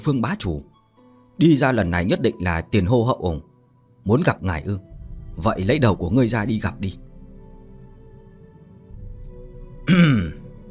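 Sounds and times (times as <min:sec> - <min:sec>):
speech: 0:00.0 - 0:00.7, 0:01.4 - 0:07.1, 0:09.9 - 0:10.4
man dry cough: 0:09.8 - 0:10.5.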